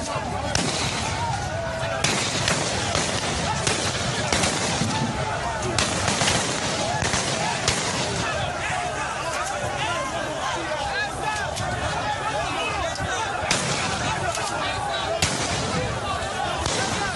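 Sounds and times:
outdoor crowd commotion at a protest: 0.0s - 17.1s
people shouting at a protest: 0.0s - 17.1s
sharp gunshots at a protest: 0.4s - 8.5s, 13.4s - 14.5s, 15.1s - 17.1s.

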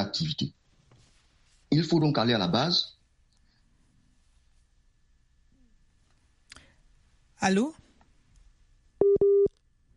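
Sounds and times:
speech: 0.0s - 0.6s, 1.7s - 3.0s, 7.4s - 7.8s
telephone busy tone beeps after a dropped call with a guest: 9.0s - 9.5s.

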